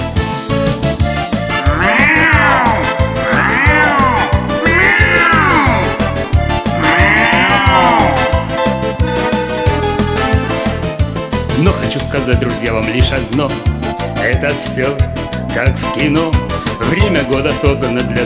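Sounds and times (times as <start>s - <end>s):
loud busy music with a steady driving beat: 0.0s - 11.9s
cat yowling: 1.5s - 8.6s
speech: 12.3s - 18.2s.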